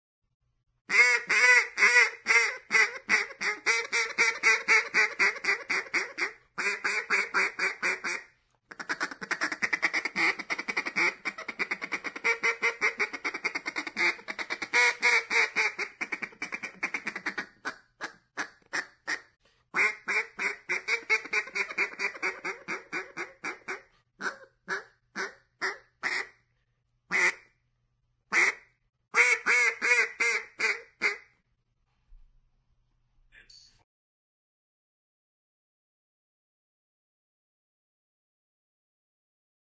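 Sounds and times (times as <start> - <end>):
duck: 0.9 - 26.4, 27.1 - 27.5, 28.3 - 31.3.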